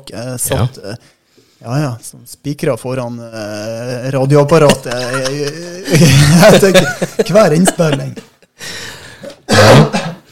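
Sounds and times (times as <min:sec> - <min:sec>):
speech: 0:00.0 - 0:08.8
laughter: 0:04.6 - 0:08.5
person coughing: 0:09.5 - 0:10.2.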